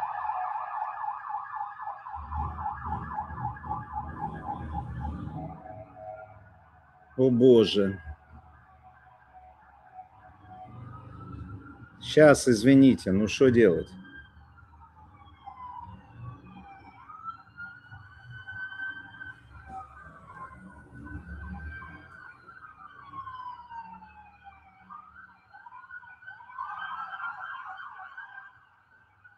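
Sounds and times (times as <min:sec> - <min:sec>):
low traffic rumble: 0:00.0 - 0:25.5
convoy of emergency vehicles with sirens wailing: 0:00.0 - 0:29.3
speech: 0:07.2 - 0:08.1, 0:12.2 - 0:14.0.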